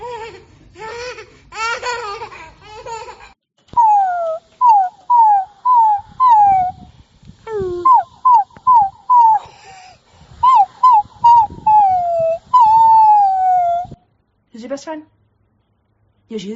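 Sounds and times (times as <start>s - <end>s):
mixed squeaky sounds: 3.8s - 6.8s, 7.5s - 9.4s, 10.4s - 14.0s
puppy whimpering and yelping: 3.8s - 6.8s, 7.5s - 9.5s, 10.4s - 14.0s
speech: 16.4s - 16.5s.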